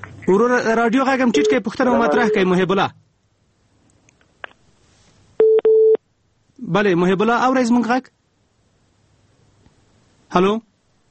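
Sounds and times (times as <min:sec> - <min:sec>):
speech: 0:00.3 - 0:03.1, 0:06.7 - 0:08.2, 0:10.3 - 0:10.7
telephone busy tone after a caller's line drops: 0:05.4 - 0:06.0.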